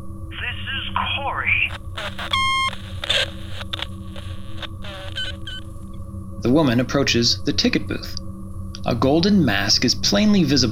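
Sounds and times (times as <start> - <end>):
low steady hum: 0.0 - 10.7
speech: 1.5 - 3.8, 6.4 - 8.2, 8.9 - 10.7
telephone ringing with a short bright electronic tone: 1.7 - 5.9.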